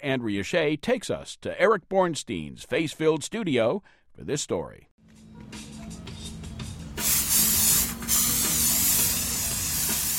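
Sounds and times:
speech: 0:00.0 - 0:05.6
water spraying onto head-sized clay lumps at an outside table: 0:07.0 - 0:10.1.

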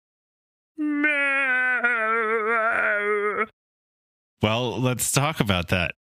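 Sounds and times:
person imitating an ankylosaurus call: 0:00.8 - 0:03.5
speech: 0:04.4 - 0:06.0.

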